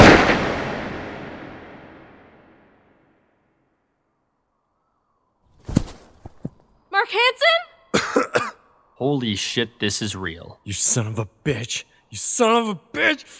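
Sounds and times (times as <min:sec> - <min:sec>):
gunshots: 0:00.0 - 0:02.5
speech: 0:07.1 - 0:07.7, 0:09.0 - 0:13.3.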